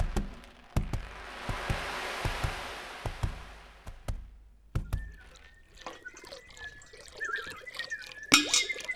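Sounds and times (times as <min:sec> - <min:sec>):
drips and plinks in a well: 0:00.0 - 0:08.9
coin thrown into well water with rushing splash: 0:05.8 - 0:08.9
bright clink: 0:08.3 - 0:08.9.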